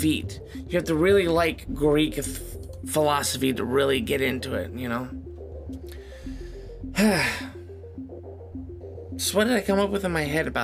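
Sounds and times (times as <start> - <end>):
speech: 0.0 - 5.2, 7.0 - 7.5, 9.2 - 10.6
soft music: 0.0 - 10.6
person yawning: 7.0 - 7.6.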